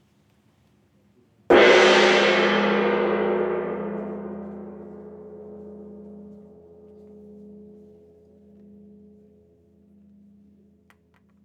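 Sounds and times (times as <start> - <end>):
gong vibrating: 1.5 - 7.7.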